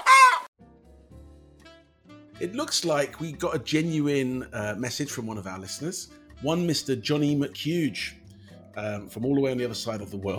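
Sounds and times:
loud harsh chicken squawk: 0.0 - 0.5
speech: 2.4 - 8.2, 8.8 - 10.3.

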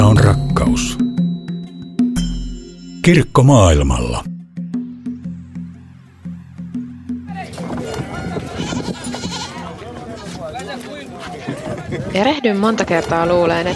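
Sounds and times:
steady tonal sound: 0.0 - 9.2
speech: 3.1 - 4.3, 12.2 - 13.7
goats bleating while being loaded: 7.8 - 10.5, 12.8 - 13.7.

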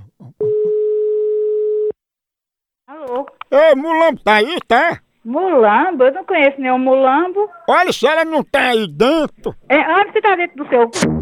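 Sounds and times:
loud steady telephone busy signal tone: 0.4 - 1.9
speech: 3.2 - 11.1.

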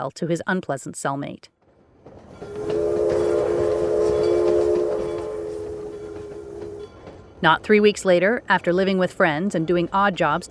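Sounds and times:
speech: 0.0 - 1.6, 7.4 - 10.5
train rumbling along the tracks: 1.7 - 10.5
loud steady train horn blast: 2.5 - 6.9.

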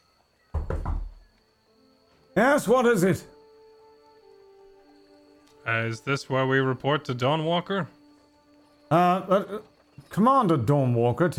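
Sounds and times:
knocking on the closed wooden door of a small room off a stairway: 0.5 - 1.3
speech: 2.4 - 3.3, 5.6 - 8.0, 8.9 - 11.3.

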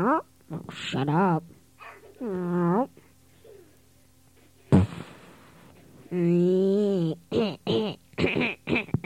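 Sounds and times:
speech: 0.0 - 1.6, 2.2 - 3.0, 6.1 - 8.8
farts: 4.7 - 5.6.

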